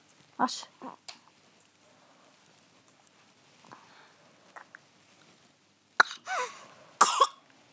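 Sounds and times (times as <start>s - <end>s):
patient with a dry cough coughing on request: 6.0s - 7.4s.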